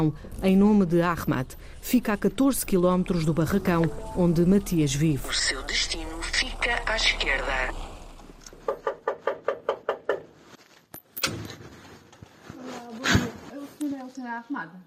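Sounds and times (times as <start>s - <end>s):
speech: 0.0s - 7.8s, 14.1s - 14.8s
firm knocking on a house door: 8.7s - 10.3s.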